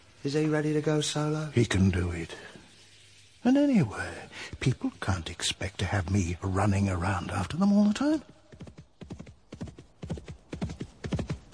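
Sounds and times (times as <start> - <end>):
speech: 0.2 - 2.6, 3.4 - 8.4
horse hooves cantering in a three-beat rhythm: 7.8 - 11.5.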